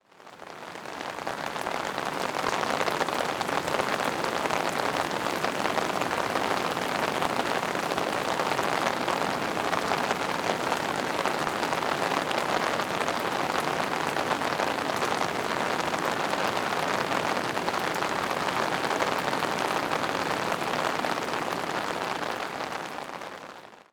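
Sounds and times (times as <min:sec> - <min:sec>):
rain on a tent: 0:00.0 - 0:23.9.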